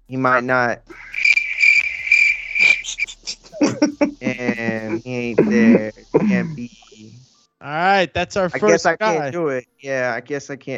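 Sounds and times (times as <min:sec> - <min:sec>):
speech: 0:00.1 - 0:01.3, 0:03.6 - 0:10.7
crickets chirping: 0:00.4 - 0:07.4
low croaking pulses: 0:00.8 - 0:07.2
laughter: 0:02.8 - 0:07.2, 0:07.9 - 0:10.3.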